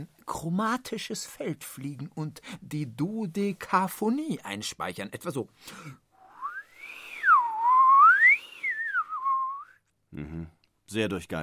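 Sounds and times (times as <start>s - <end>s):
speech: 0.0s - 6.0s, 10.1s - 11.4s
person whistling an imitation of hermit thrush song: 6.2s - 9.8s.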